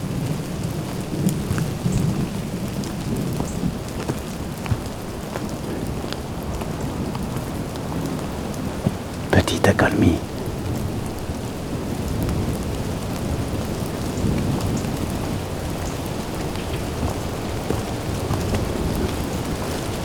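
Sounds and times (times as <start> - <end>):
rain falling steadily during a thunderstorm at a wardens' hut: 0.0 - 20.0
speech: 9.6 - 10.3.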